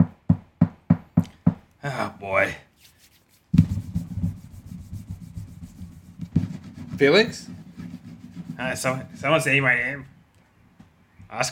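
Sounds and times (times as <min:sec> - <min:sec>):
speech: 0:01.8 - 0:02.7, 0:07.0 - 0:07.6, 0:08.6 - 0:10.1
sanding wood while making furniture: 0:02.8 - 0:09.5.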